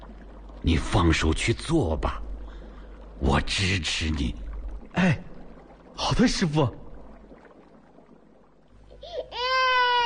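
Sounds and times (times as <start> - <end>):
speech: 0.6 - 2.2, 3.2 - 4.4, 5.0 - 5.3, 6.0 - 6.8
small child crying: 9.0 - 10.0.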